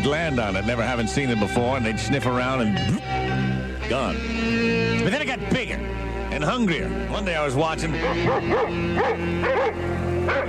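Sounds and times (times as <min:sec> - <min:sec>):
speech: 0:00.0 - 0:10.4
neighbor's dog barking short high yipping barks: 0:08.0 - 0:10.4.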